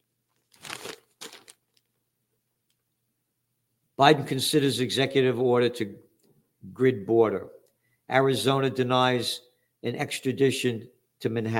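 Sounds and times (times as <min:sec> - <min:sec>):
newspaper pages rustling and crinkling: 0:00.3 - 0:01.9
speech: 0:04.0 - 0:11.5.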